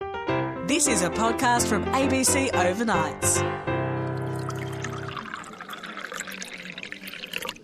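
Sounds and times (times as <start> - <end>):
speech: 0.7 - 3.7
liquid pouring into a vessel: 4.1 - 7.6.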